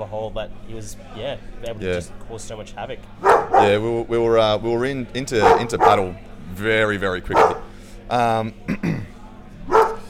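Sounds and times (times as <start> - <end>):
speech: 0.0 - 9.0
dog barking angrily: 3.2 - 3.8, 5.4 - 6.2, 7.3 - 7.7, 9.7 - 10.0.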